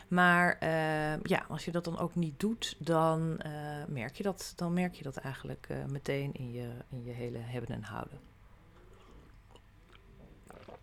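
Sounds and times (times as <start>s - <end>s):
low steady hum: 0.0s - 10.8s
speech: 0.1s - 8.3s
person sipping tea: 8.6s - 10.8s
gulp: 8.7s - 10.8s.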